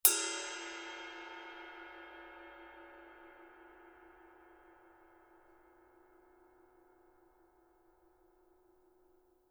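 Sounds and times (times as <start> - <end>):
dry heavy ride cymbal body of forged bronze alloy: 0.0 - 5.5.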